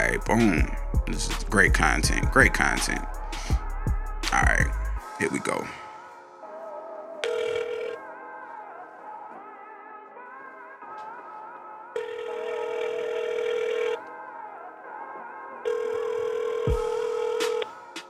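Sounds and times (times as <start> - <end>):
speech: 0.1 - 3.2, 4.3 - 5.8
buzzing ringback tones of an outgoing phone call: 7.2 - 8.0, 12.0 - 14.0, 15.7 - 17.7.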